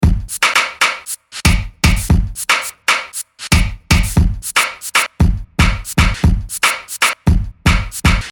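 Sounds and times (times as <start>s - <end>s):
ragga drum break: 0.0s - 8.3s.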